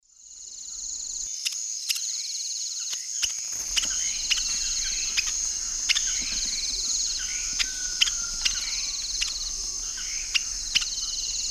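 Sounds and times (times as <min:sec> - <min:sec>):
Conopophaga aurita calls in Eastern Lowlands of South America: 0:02.8 - 0:11.4.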